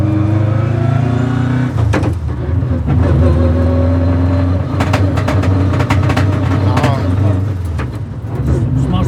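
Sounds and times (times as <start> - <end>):
rally car engine droning while driving a lap: 0.0 - 9.0
sharp clicks and rattles: 4.6 - 8.5.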